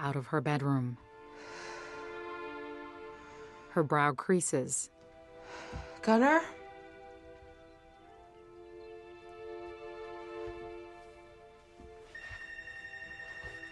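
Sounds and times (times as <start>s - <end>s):
speech: 0.0s - 1.6s, 3.8s - 6.6s
telephone ringing inside a home: 12.2s - 13.7s.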